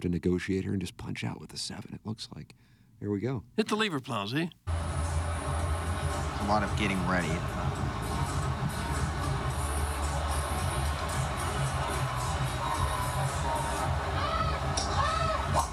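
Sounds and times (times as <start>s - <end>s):
speech: 0.0s - 5.0s, 6.4s - 7.6s
outdoor crowd murmur of golf spectators: 5.0s - 15.7s
spectator screaming during golfer's backswing: 14.1s - 15.7s.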